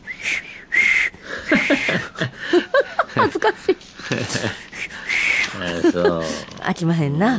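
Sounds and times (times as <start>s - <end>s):
failed attempt at whistling with breathy airy blows: 0.0s - 2.1s, 4.8s - 5.6s
laughter: 1.3s - 4.8s, 5.4s - 6.5s
speech: 6.8s - 7.3s.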